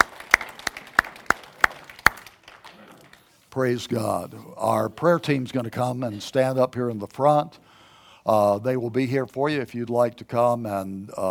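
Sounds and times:
audience clapping in unison: 0.0s - 3.5s
speech: 3.6s - 11.2s.

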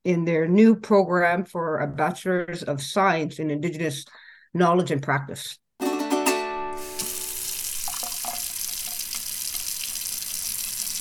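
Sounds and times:
speech: 0.0s - 5.6s
water gushing from a tap with small splashes: 6.8s - 11.0s.

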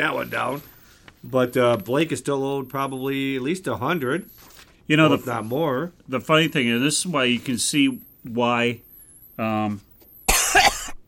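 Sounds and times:
speech: 0.0s - 9.9s
person coughing: 10.3s - 11.0s.

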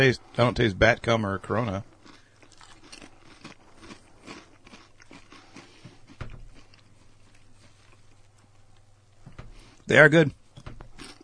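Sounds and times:
speech: 0.0s - 1.9s, 9.9s - 10.4s
thick Chinese potato chips being chewed: 1.7s - 8.9s, 10.9s - 11.2s.

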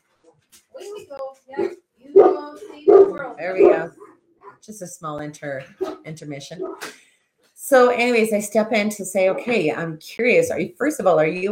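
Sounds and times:
speech: 1.1s - 1.8s, 2.6s - 4.0s, 4.6s - 7.0s, 7.7s - 11.4s
dogs barking and yipping: 1.6s - 4.7s, 6.6s - 6.9s.

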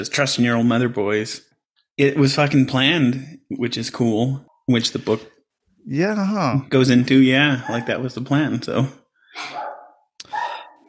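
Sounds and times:
speech: 0.0s - 9.6s
dog barking: 7.5s - 8.2s, 9.4s - 10.8s.

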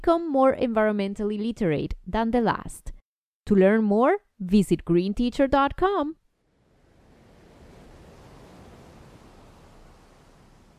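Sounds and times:
speech: 0.0s - 6.2s
gusting wind on an open shore on a cool windy morning: 6.4s - 10.7s
surf roaring on an open shore: 6.4s - 10.7s.

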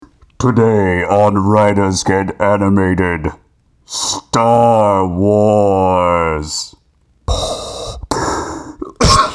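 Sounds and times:
speech: 0.4s - 6.7s
harsh raspy coughs: 8.8s - 9.3s.

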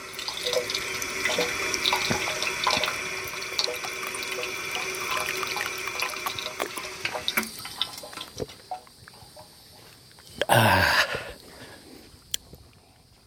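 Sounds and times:
water fountain running: 0.0s - 10.4s.

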